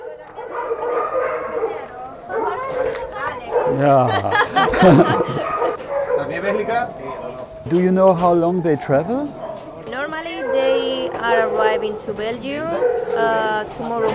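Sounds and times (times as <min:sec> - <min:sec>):
dogs in transport boxes barking, yipping and whimpering: 0:00.0 - 0:14.1
indistinct voices of drivers murmuring: 0:00.0 - 0:14.1
speech: 0:03.7 - 0:05.4, 0:06.5 - 0:09.4, 0:11.2 - 0:14.1
laughter: 0:03.7 - 0:05.9.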